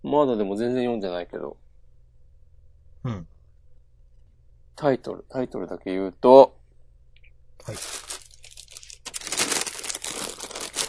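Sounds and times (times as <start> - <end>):
speech: 0.1 - 1.7, 3.0 - 3.3, 4.8 - 6.5, 7.6 - 8.1
crinkly plastic bag rustling: 7.7 - 10.8.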